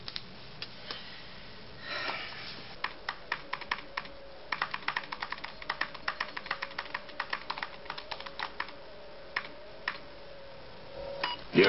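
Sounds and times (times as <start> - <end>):
faint steady hum: 0.0 - 11.6
rapid typing on a computer keyboard: 2.8 - 8.8.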